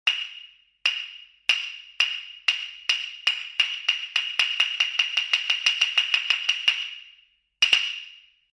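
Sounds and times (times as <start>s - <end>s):
gagaku hyoshigi wooden clappers for fire watch: 0.0s - 8.4s.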